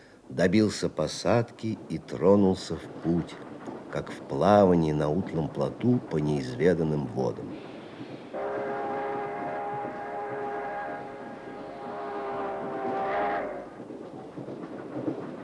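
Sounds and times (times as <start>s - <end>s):
moving train with rattling coupled cars rumbling: 0.0s - 15.4s
speech: 0.4s - 7.7s
long sustained horn-like tone: 7.6s - 14.0s.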